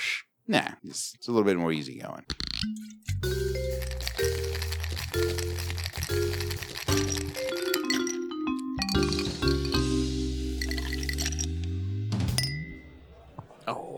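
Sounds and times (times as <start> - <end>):
speech: 0.5 - 4.6
glasses clinking: 2.6 - 10.0, 10.6 - 11.6, 12.3 - 13.0
low murmuring: 13.0 - 13.9.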